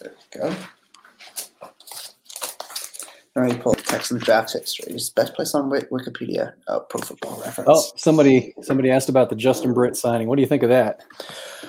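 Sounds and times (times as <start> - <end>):
speech: 0.3 - 0.8, 3.4 - 11.6
paper rustling and crinkling: 0.4 - 4.4
paper ripping: 1.2 - 3.1.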